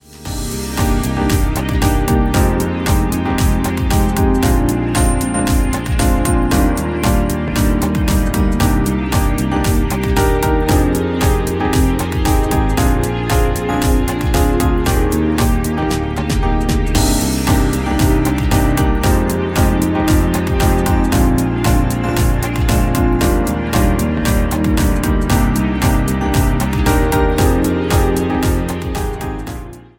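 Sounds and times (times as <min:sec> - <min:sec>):
positive rhythm piano: 0:00.0 - 0:29.9.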